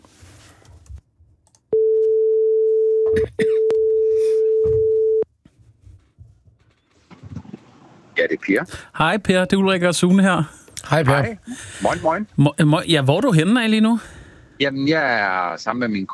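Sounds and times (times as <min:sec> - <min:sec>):
phone call ringing tone: 0:01.7 - 0:05.2
speech: 0:08.5 - 0:16.1.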